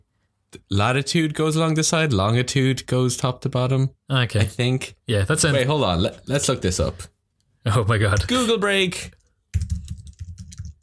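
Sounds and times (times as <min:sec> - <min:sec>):
speech: 0:00.5 - 0:09.7
typing on a wireless computer keyboard: 0:09.5 - 0:10.8.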